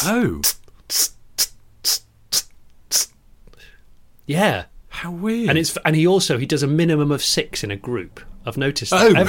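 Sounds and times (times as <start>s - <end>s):
speech: 0.0s - 2.0s, 4.3s - 9.2s
small high-pitched kitten-like sneezes: 0.4s - 3.2s.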